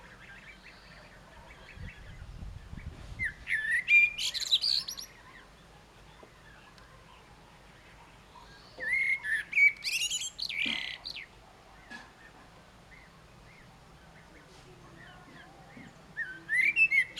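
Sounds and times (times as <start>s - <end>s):
common blackbird Turdus merula song: 0.0s - 17.1s.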